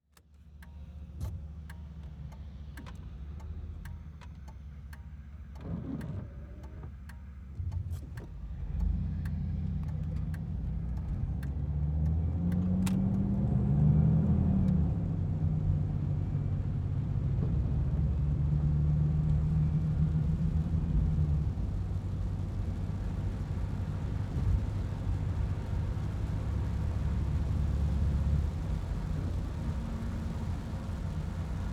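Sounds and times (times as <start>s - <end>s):
van turn signal ticking: 0.2s - 13.7s
van interior driving in rain: 1.0s - 31.7s
van windshield wipers on high: 3.8s - 11.4s.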